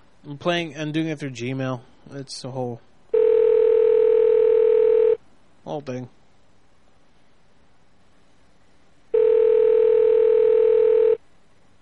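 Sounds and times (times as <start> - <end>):
speech: 0.2 - 2.9, 5.6 - 6.2
telephone ringback tone on an outgoing call: 3.2 - 5.2, 9.2 - 11.2.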